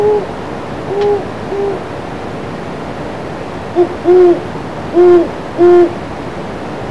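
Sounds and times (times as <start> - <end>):
great horned owl hooting: 0.0 - 0.3, 0.9 - 1.9, 3.8 - 6.0.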